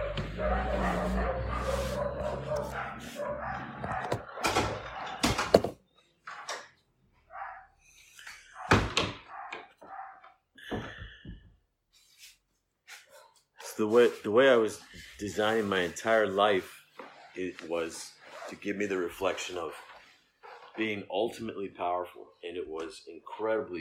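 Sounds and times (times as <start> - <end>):
dogs barking: 0.0 - 5.5, 7.3 - 10.4, 20.4 - 20.8
speech: 13.8 - 16.8, 17.4 - 19.9, 20.8 - 23.7.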